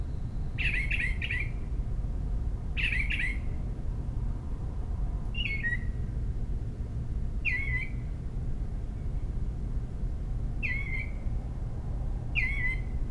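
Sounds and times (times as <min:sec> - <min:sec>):
constant low rumble: 0:00.0 - 0:13.0
Northern mockingbird giving rasping buzzy protest calls at home in Maryland USA: 0:00.6 - 0:01.6, 0:02.8 - 0:03.5, 0:05.4 - 0:06.0, 0:07.4 - 0:08.0, 0:10.6 - 0:11.2, 0:12.3 - 0:13.0.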